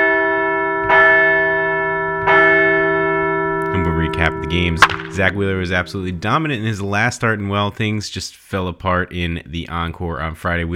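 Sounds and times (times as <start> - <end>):
large bell being struck: 0.0 - 6.2
speech: 4.2 - 10.7.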